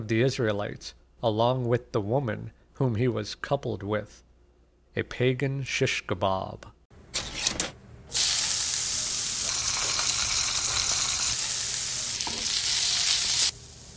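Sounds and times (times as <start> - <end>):
speech: 0.0 - 4.3, 5.0 - 6.8
Spam frying and sizzling in a hot pan: 8.1 - 13.9.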